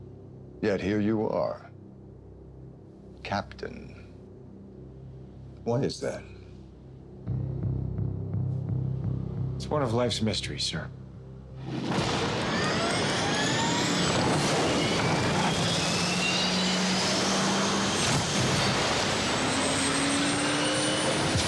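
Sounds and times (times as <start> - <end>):
speech: 0.6 - 1.7, 3.3 - 4.0, 5.6 - 6.4, 9.6 - 11.0
airplane engine roar in a movie trailer: 5.7 - 21.4.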